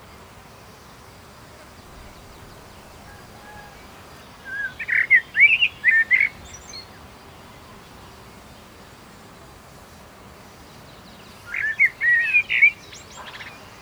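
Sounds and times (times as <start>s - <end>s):
Common blackbird Turdus merula calls: 1.8s - 6.9s, 11.5s - 13.8s.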